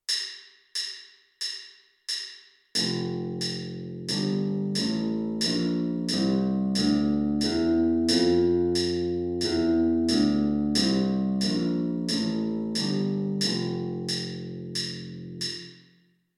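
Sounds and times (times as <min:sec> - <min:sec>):
F major scale on electric bass: 0:02.8 - 0:15.8.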